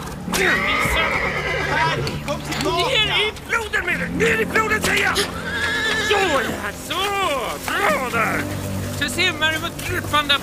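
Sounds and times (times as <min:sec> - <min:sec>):
horse neighing with a long shrill whinny: 0:00.3 - 0:02.6, 0:05.0 - 0:06.8
speech: 0:00.4 - 0:10.4.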